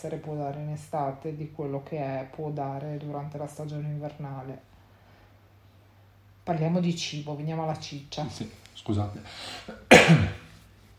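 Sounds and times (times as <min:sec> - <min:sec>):
speech: 0:00.0 - 0:04.7, 0:06.4 - 0:10.4
harsh cough: 0:09.6 - 0:10.5.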